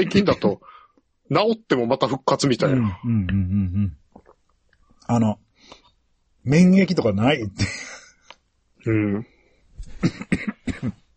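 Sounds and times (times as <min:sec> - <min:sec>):
speech: 0:00.0 - 0:00.7, 0:01.3 - 0:04.0, 0:05.1 - 0:05.8, 0:06.4 - 0:08.0, 0:08.8 - 0:09.3, 0:10.0 - 0:11.0
harsh coughs: 0:09.9 - 0:11.1.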